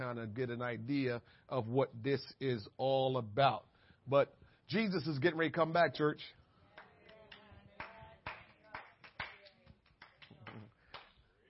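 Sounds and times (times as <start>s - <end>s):
speech: 0.0s - 6.4s
scattered hand claps during a church service: 6.8s - 11.2s.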